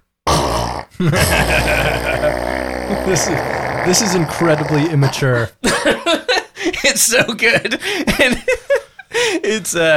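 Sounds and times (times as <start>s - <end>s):
muffled fart sound effect played through a speaker: 0.3s - 4.9s
speech: 0.8s - 6.0s, 6.8s - 9.9s.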